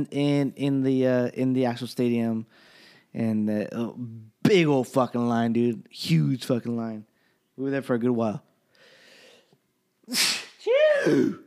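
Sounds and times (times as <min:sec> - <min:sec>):
speech: 0:00.0 - 0:08.5, 0:10.1 - 0:10.3, 0:11.0 - 0:11.4
single loud sneeze: 0:10.1 - 0:11.4.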